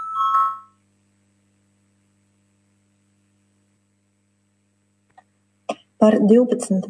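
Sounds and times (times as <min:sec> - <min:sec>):
short bright electronic parliamentary voting bell chime: 0:00.0 - 0:00.8
steady low hum of noise: 0:00.0 - 0:06.8
speech: 0:06.0 - 0:06.8.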